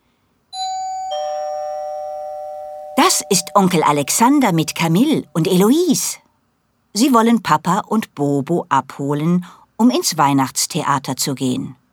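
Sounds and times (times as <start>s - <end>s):
two-tone doorbell chime: 0.6s - 5.3s
speech: 3.0s - 6.2s, 6.9s - 11.8s.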